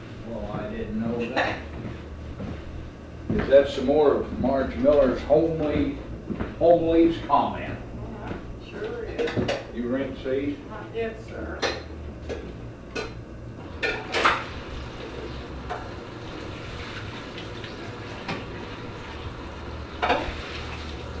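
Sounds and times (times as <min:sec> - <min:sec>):
speech: 0:00.3 - 0:01.7, 0:03.3 - 0:07.8, 0:09.2 - 0:12.6
plates and cutlery clinking and clattering while washed in a sink: 0:09.1 - 0:09.7, 0:11.6 - 0:14.6, 0:20.0 - 0:20.6.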